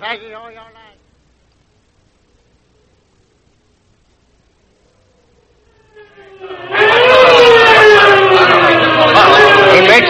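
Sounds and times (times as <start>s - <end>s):
speech: 0.0s - 1.1s
police squad car siren wailing: 5.6s - 10.0s.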